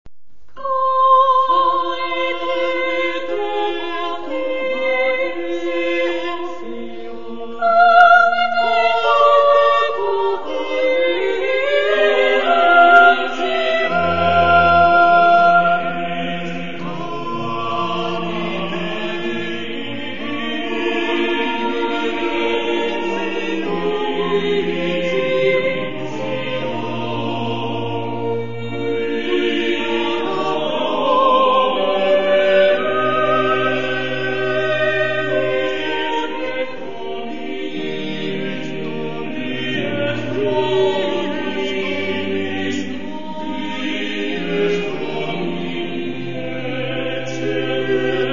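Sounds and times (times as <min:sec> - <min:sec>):
polyphonic singing: 0:00.6 - 0:48.3.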